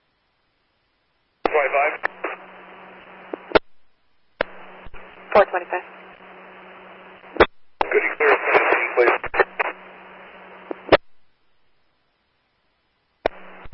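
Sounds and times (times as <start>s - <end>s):
band-limited radio static over dispatch channel: 1.4s - 3.6s, 4.4s - 11.0s, 13.2s - 13.7s
garbled unintelligible voice over radio: 1.5s - 2.4s, 7.8s - 9.7s
speech: 5.4s - 6.0s, 7.9s - 9.4s.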